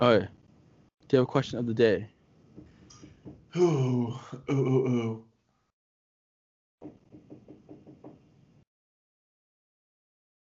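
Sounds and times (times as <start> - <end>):
speech: 0.0 - 0.4, 1.1 - 2.2, 3.5 - 5.3
knocking on a door: 6.8 - 8.3.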